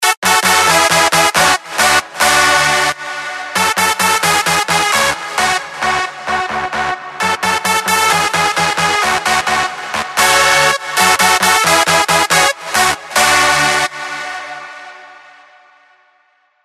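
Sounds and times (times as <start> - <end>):
classic lead synth: 0.0 - 15.7.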